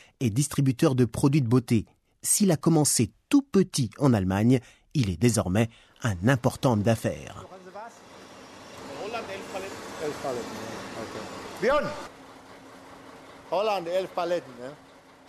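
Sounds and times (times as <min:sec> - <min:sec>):
speech: 0:00.2 - 0:07.5, 0:10.0 - 0:12.1, 0:13.5 - 0:14.8
truck engine idling: 0:07.1 - 0:15.2.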